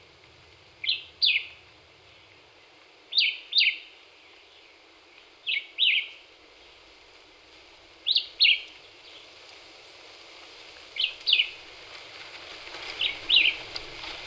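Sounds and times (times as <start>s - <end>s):
Black-whiskered vireo singing brisk paired chirps: 0.8s - 6.8s, 8.0s - 9.3s.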